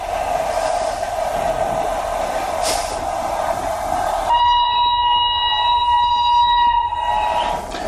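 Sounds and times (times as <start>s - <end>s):
train rumbling along: 0.0s - 7.8s
loud sustained train horn blaring: 4.3s - 7.6s.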